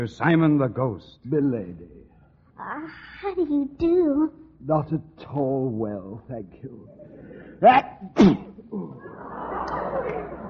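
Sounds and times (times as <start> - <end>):
speech: 0.0 - 6.9, 7.6 - 10.4
loud sneeze: 7.6 - 9.0
laughter: 8.7 - 10.4.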